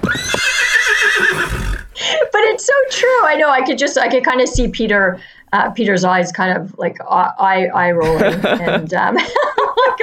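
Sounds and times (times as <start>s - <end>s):
horse neighing: 0.0s - 2.0s
speech: 2.6s - 10.0s
laughter: 8.0s - 10.0s.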